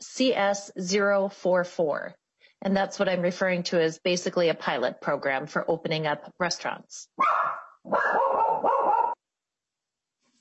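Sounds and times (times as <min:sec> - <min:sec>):
speech: 0:00.2 - 0:09.1
dog barking: 0:07.2 - 0:09.2.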